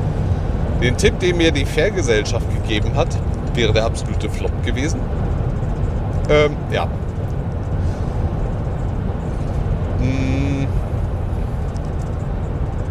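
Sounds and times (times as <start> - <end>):
road traffic rumble heard from inside a moving car: 0.0 - 12.9
speech: 0.8 - 5.3, 6.3 - 7.1, 10.0 - 10.8
short murmured vocal sound: 10.0 - 10.8.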